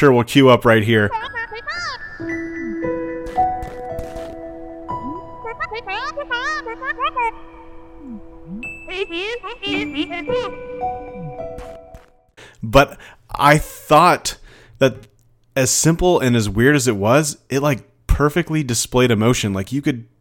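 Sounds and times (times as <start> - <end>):
speech: 0.0 - 1.4, 9.0 - 11.6, 12.6 - 20.1
high squeaky babbling video game character voices: 1.0 - 2.9, 4.9 - 11.3
steady chiming musical tones: 1.2 - 3.7, 4.4 - 11.6.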